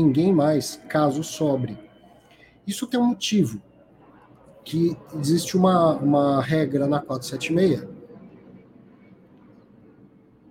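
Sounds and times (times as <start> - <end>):
speech: 0.0 - 1.9, 2.7 - 3.7, 4.6 - 7.9
airplane passing overhead: 0.0 - 10.4.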